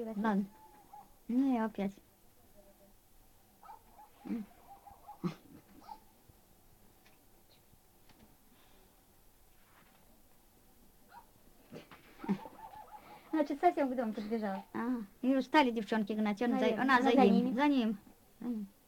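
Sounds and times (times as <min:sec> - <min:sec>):
speech: 0:00.0 - 0:00.6, 0:01.3 - 0:02.1, 0:04.2 - 0:04.5, 0:05.2 - 0:05.4, 0:13.3 - 0:18.8
dog barking: 0:00.5 - 0:01.2, 0:03.6 - 0:06.1, 0:11.1 - 0:11.4, 0:12.2 - 0:13.6.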